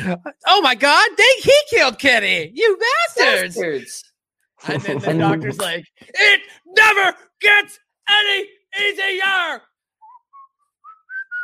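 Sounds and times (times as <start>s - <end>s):
speech: 0.0s - 9.7s
laughter: 2.9s - 3.9s, 4.7s - 6.4s
person whistling a short melodic phrase: 10.0s - 11.4s.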